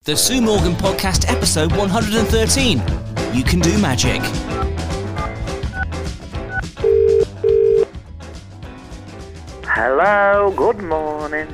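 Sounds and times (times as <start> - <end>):
speech: 0.0 - 4.8, 9.8 - 11.5
upbeat music: 0.0 - 11.5
telephone double ring for an incoming call: 6.8 - 7.9.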